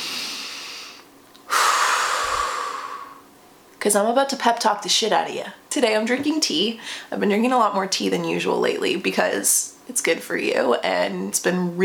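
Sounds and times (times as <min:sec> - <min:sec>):
deep breath: 0:00.0 - 0:03.3
speech: 0:03.8 - 0:11.8.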